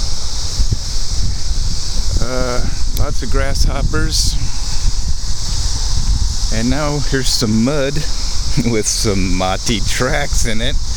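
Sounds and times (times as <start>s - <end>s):
wind blowing outdoors on a forest trail buffeting the microphone: 0.0s - 10.9s
speech: 2.3s - 4.4s, 6.5s - 10.9s.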